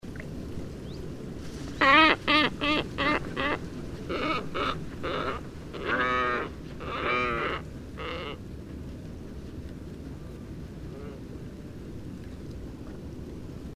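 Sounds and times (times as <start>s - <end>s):
low background rumble: 0.0s - 13.7s
glossy ibis grunting and croaking: 1.8s - 8.4s.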